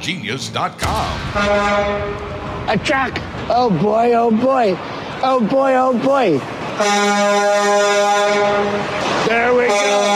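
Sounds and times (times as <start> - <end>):
speech: 0.0 - 10.1
loud sustained truck air horn blaring: 1.2 - 2.6, 6.7 - 10.1.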